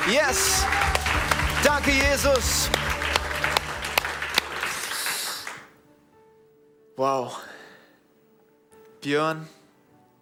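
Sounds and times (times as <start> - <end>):
speech: 0.0 - 1.0, 1.6 - 3.0, 7.0 - 7.5, 9.0 - 9.6
audience applauding: 0.0 - 5.8.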